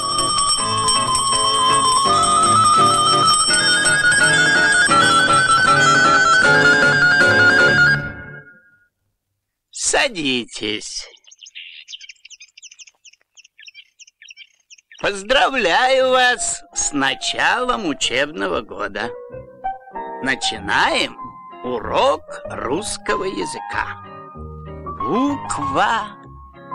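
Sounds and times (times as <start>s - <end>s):
high chirping sounds: 0.0s - 6.3s, 10.4s - 15.3s
school bell ringing to start a lesson: 0.0s - 7.2s
speech: 10.0s - 11.2s, 15.0s - 19.5s, 20.2s - 24.1s, 25.1s - 26.2s.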